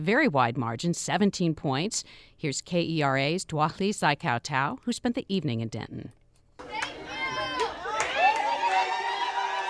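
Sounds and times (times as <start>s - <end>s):
speech: 0.0s - 6.2s
excited whoops from the crowd: 6.6s - 9.6s
large crowd cheering and shouting at an election night gathering: 6.6s - 9.6s.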